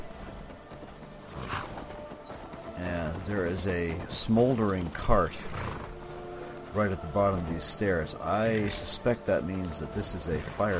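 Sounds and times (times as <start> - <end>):
dense ambience: 0.0 - 10.7
horse hooves clip-clopping: 0.0 - 10.7
speech: 3.2 - 5.7, 6.8 - 10.7.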